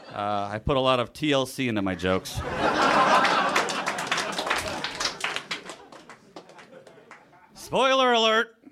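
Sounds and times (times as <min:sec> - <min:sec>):
laughter: 0:00.0 - 0:00.5, 0:01.9 - 0:07.6
speech: 0:00.2 - 0:03.3, 0:07.7 - 0:08.5
audience applauding after a joke: 0:02.7 - 0:07.4.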